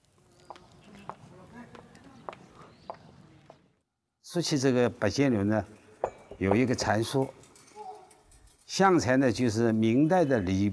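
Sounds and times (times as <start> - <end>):
high-heeled shoes clicking on stone pavement in Nanxun town China: 0.1 - 3.7
speech: 4.3 - 5.8, 6.4 - 7.4, 8.8 - 10.7.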